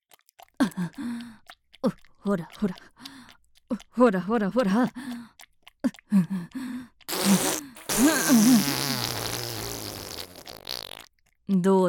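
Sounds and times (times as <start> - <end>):
speech: 0.8 - 3.0, 3.7 - 5.3, 6.1 - 8.8, 11.5 - 11.8
farting: 7.1 - 11.1.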